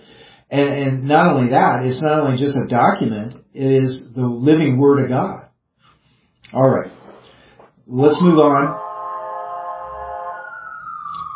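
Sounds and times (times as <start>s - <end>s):
speech: 0.5s - 5.4s, 6.5s - 7.0s, 7.9s - 8.8s
emergency siren passing outside: 7.9s - 11.3s.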